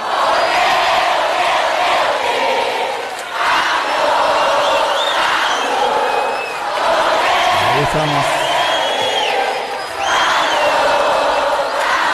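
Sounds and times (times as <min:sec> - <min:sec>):
loud live crowd cheering and shouting: 0:00.0 - 0:12.1
whistles: 0:00.2 - 0:01.0, 0:04.1 - 0:06.8, 0:08.0 - 0:12.1
speech: 0:07.9 - 0:08.4.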